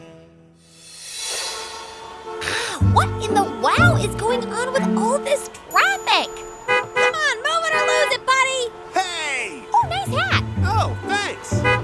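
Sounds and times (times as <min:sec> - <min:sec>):
speech: 0:02.8 - 0:05.6
car horns honking in a traffic jam: 0:04.0 - 0:11.8.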